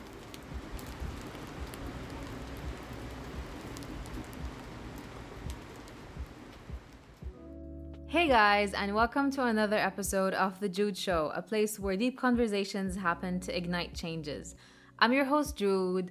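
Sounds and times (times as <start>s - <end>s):
steady rain falling with drips and patters on a surface: 0.0s - 7.4s
speech: 8.1s - 16.0s.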